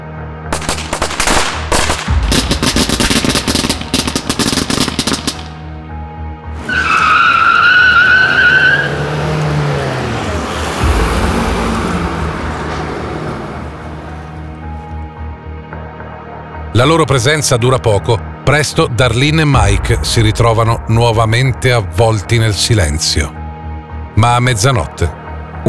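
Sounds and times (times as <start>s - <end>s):
firecracker pops: 0.6s - 5.6s
car engine roar: 1.7s - 15.7s
car tires screeching in a skid: 6.6s - 15.2s
speech: 16.8s - 23.4s, 24.2s - 25.6s.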